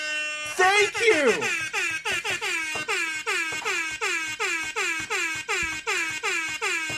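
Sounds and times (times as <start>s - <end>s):
air horn honks: 0.0s - 6.9s
speech: 0.5s - 1.7s.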